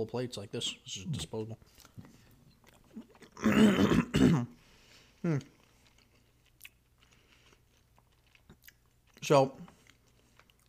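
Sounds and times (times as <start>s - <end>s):
speech: 0.0s - 2.1s, 3.4s - 4.6s, 5.2s - 5.5s, 9.2s - 9.7s
person chewing food: 1.6s - 3.5s, 4.9s - 10.6s
short throaty vocal sound: 3.3s - 4.5s.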